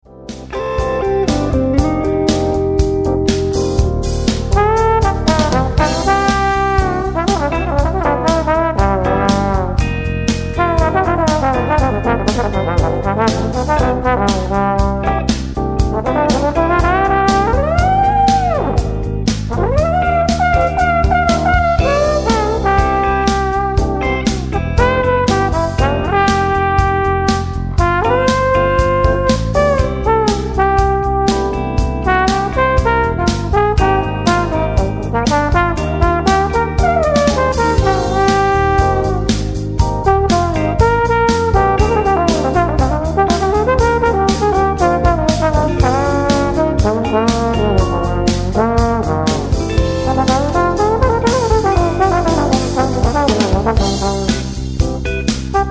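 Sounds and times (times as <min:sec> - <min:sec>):
trombone solo: 0:01.5 - 0:55.6.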